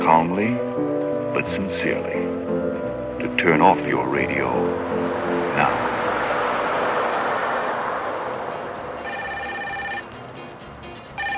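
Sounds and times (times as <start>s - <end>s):
speech: 0.1s - 6.0s
broad noise: 1.2s - 10.8s
telephone ringing electronically: 9.0s - 10.2s, 11.1s - 11.3s.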